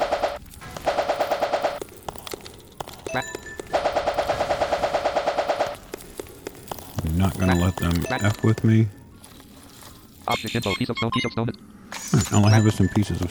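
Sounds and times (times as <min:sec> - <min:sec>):
rapid automatic gunfire in a video game: 0:00.0 - 0:09.8
speech: 0:03.1 - 0:03.4, 0:07.2 - 0:09.0, 0:10.3 - 0:13.2.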